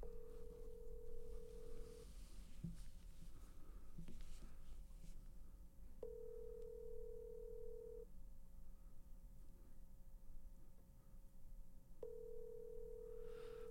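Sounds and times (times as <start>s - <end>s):
unanswered phone call ringback tone: 0.0s - 2.1s, 6.0s - 8.0s, 12.0s - 13.6s
low hum: 0.0s - 13.6s.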